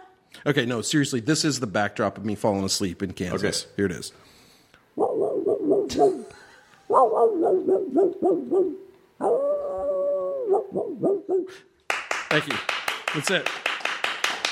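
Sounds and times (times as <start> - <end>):
speech: 0.4 - 4.4, 5.9 - 6.3, 7.6 - 9.6, 10.5 - 11.7, 12.3 - 13.6
hound dog baying howl: 5.0 - 6.2, 6.9 - 11.5
hound dog barking in the distance: 5.0 - 6.3, 6.9 - 9.4, 10.4 - 11.6.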